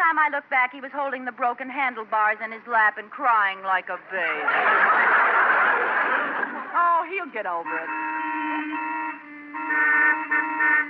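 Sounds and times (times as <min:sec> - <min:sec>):
speech: 0:00.2 - 0:08.1
laughter: 0:04.1 - 0:07.0
car horns honking in traffic: 0:07.5 - 0:10.8.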